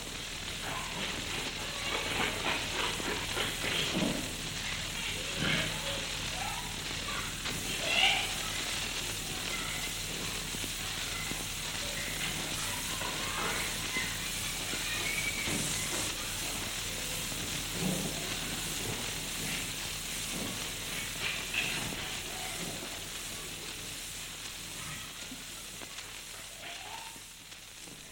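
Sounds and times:
old test record surface hiss and crackle: 0:00.0 - 0:28.0
faint voices of children playing: 0:00.4 - 0:28.0.

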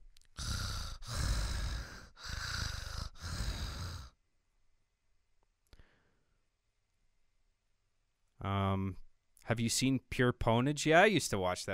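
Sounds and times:
man breathing heavily into the microphone: 0:00.4 - 0:04.2
speech: 0:08.4 - 0:11.7.

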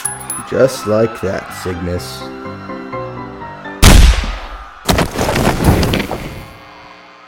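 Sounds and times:
speech: 0:00.5 - 0:02.4
rifle gunshot: 0:03.8 - 0:05.8.

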